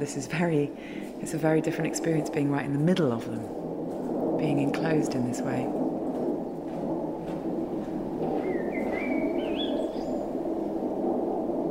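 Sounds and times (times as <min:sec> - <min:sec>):
speech: 0:00.0 - 0:03.7, 0:04.4 - 0:05.8
steady low rumble of noise: 0:00.0 - 0:11.6
bird singing outside: 0:08.3 - 0:10.4.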